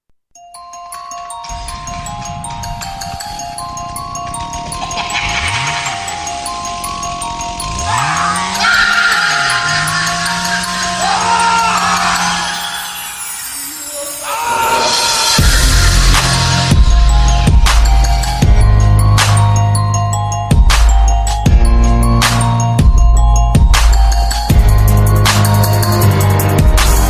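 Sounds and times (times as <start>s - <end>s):
horror bass: 1.4s - 27.0s.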